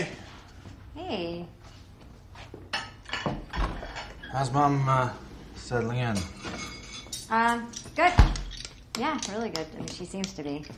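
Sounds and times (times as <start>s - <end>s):
dishes clinking while being dried in a kitchen: 2.7s - 4.9s, 5.7s - 10.0s
speech: 4.4s - 6.4s, 7.3s - 8.4s, 9.0s - 10.7s.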